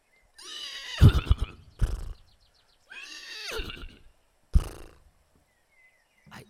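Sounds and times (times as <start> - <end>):
horse neighing: 0.4 - 2.3, 2.9 - 5.1
horse snorts and breathy huffs: 1.0 - 2.4, 3.0 - 5.1.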